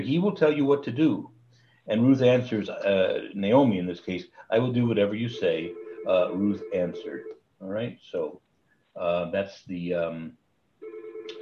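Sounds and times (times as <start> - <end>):
speech: 0.0 - 8.4, 9.0 - 10.4
mobile phone ringing with a melodic electronic ringtone: 5.3 - 7.3, 10.8 - 11.4.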